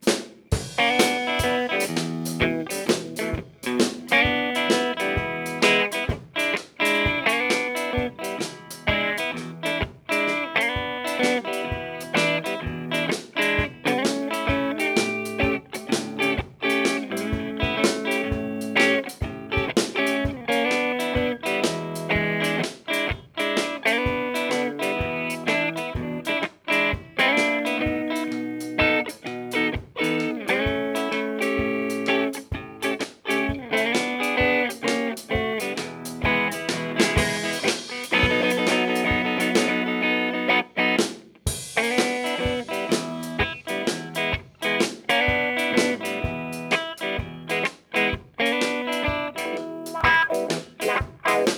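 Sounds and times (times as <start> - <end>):
blues music: 0.0 - 51.5.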